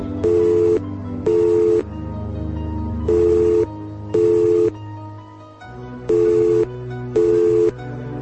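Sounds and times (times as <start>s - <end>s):
telephone ringing tone after dialing a flat's number: 0.1s - 1.9s, 3.1s - 4.8s, 6.1s - 7.8s.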